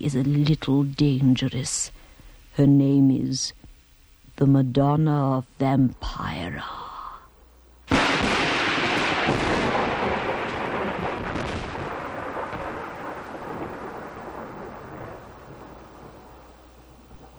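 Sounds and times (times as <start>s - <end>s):
speech: 0.0s - 2.0s, 2.6s - 3.6s, 4.4s - 6.8s
crack of thunder at night at a mansion in Inverness: 7.9s - 17.3s
steady heavy rain at night at a mansion in Inverness: 7.9s - 17.3s.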